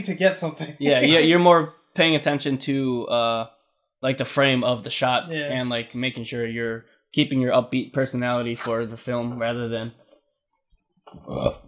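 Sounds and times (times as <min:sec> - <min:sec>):
speech: 0:00.0 - 0:10.0, 0:11.1 - 0:11.6
drawn-out burp: 0:11.2 - 0:11.6.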